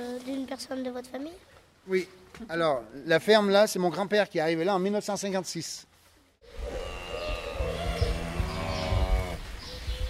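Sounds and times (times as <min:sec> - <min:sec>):
speech: 0:00.0 - 0:06.7
steady barn noise: 0:06.0 - 0:09.6
other animal sounds: 0:06.4 - 0:09.5
cows mooing in a free-stall barn: 0:06.6 - 0:09.4.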